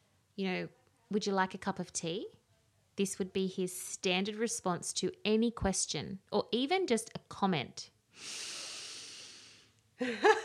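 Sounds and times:
speech: 0.4 - 2.4, 3.0 - 8.5, 10.0 - 10.4
person imitating a deep breath in through the nose: 8.2 - 9.7
laughter: 10.0 - 10.4.

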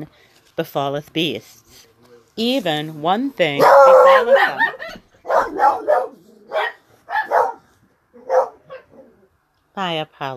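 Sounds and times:
speech: 0.0 - 6.7, 9.8 - 10.3
dogs barking: 3.6 - 9.2.

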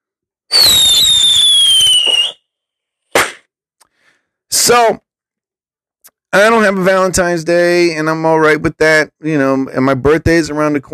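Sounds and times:
crackling fireworks burst: 0.5 - 2.4
whistling fireworks rocket: 0.5 - 2.5
speech: 4.7 - 5.0, 6.3 - 10.9.

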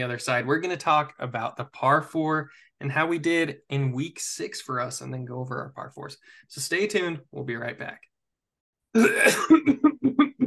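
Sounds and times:
speech: 0.0 - 8.1, 8.9 - 10.2
person forcing a fake cough: 9.0 - 10.4.

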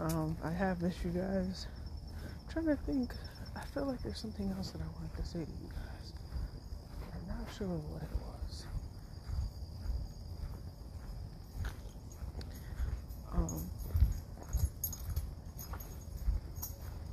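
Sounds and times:
speech: 0.0 - 1.8, 2.6 - 6.2, 7.5 - 8.7
low rumble: 0.0 - 17.1
soft footsteps of a woman walking past: 0.0 - 17.1
metal bangles jangling on a walking woman: 11.6 - 17.1.

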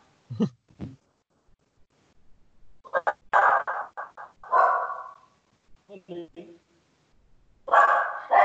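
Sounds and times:
people talking during a conversation: 0.3 - 1.0, 5.9 - 6.6
female pet dog barking in short bursts: 2.9 - 5.2, 7.7 - 8.4.

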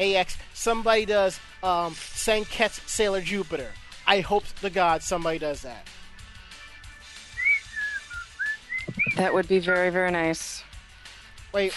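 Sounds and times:
speech: 0.0 - 6.0, 9.2 - 10.7, 11.5 - 11.7
person whistling a short wavering tune: 7.3 - 9.4.

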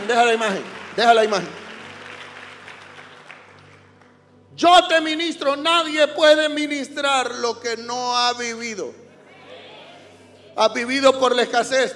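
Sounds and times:
congregation applauding during a church service: 0.0 - 4.4
speech: 0.1 - 1.6, 4.6 - 9.0, 10.6 - 11.9.

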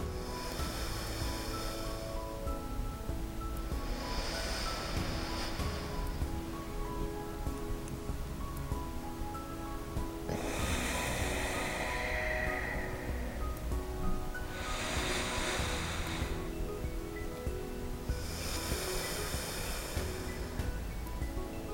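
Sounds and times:
alternate-nostril breathing in through one nostril and out the other: 0.0 - 2.8, 3.4 - 7.0, 10.3 - 16.6, 18.1 - 20.8
faint steady tonal backdrop: 0.0 - 21.7.

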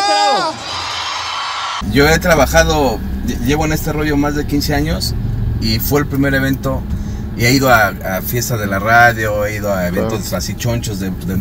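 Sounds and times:
large crowd yelling on cue at an event: 0.0 - 1.8
speech: 1.8 - 11.3
steady low hum of noise: 1.8 - 11.3.

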